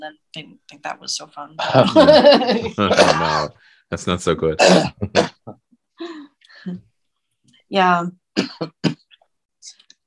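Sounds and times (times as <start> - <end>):
speech: 0.0 - 6.9, 7.7 - 8.8
laughter: 1.6 - 3.5
person coughing harshly: 2.8 - 3.5, 4.6 - 5.6, 8.4 - 9.2.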